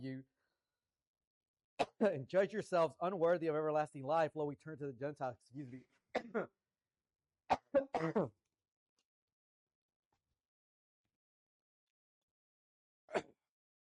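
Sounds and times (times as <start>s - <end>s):
speech: 0.0s - 0.3s, 1.8s - 6.6s, 7.5s - 8.4s
harsh coughing fit: 6.2s - 6.5s, 7.5s - 8.4s, 13.1s - 13.4s.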